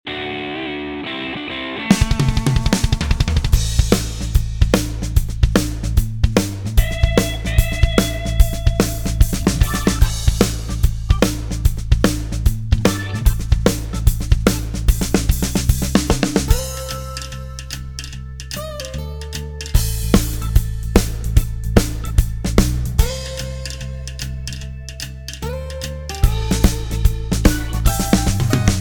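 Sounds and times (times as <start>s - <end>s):
power shuffle drum backbeat: 1.9s - 17.4s, 19.8s - 24.1s, 26.2s - 28.8s.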